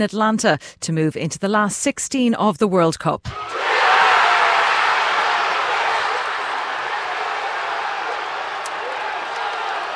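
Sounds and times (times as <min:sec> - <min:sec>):
speech: 0:00.0 - 0:03.8
football supporters roaring and cheering a winning goal: 0:03.3 - 0:09.9.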